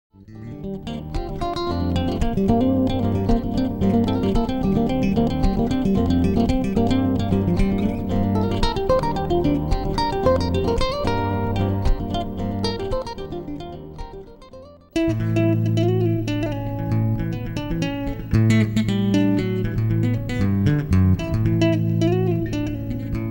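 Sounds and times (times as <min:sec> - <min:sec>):
solo contemporary bass: 0:00.2 - 0:23.2.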